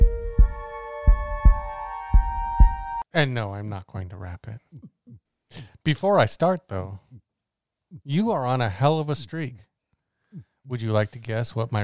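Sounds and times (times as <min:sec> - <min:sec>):
heartbeat thumps: 0:00.0 - 0:03.0
speech: 0:03.1 - 0:07.1, 0:08.0 - 0:09.7, 0:10.3 - 0:11.8.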